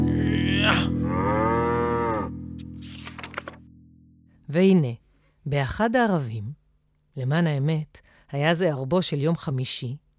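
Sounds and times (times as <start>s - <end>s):
cow mooing: 0.0s - 2.4s
speech: 4.5s - 6.6s, 7.2s - 10.0s.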